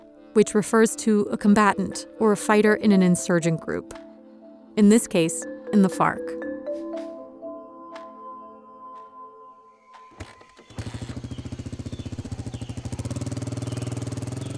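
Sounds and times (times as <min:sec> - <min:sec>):
speech: 0:00.4 - 0:04.0, 0:04.8 - 0:06.4
rented motorcycle engine idling and roaring on a dirt road in southern Colombia: 0:10.2 - 0:14.5.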